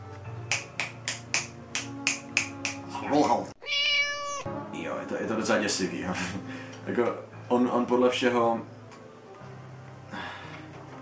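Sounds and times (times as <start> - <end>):
crisp finger snaps: 0.4 - 3.0
speech: 3.3 - 3.5, 5.1 - 8.8
short high-pitched harmonic cry: 3.6 - 4.5.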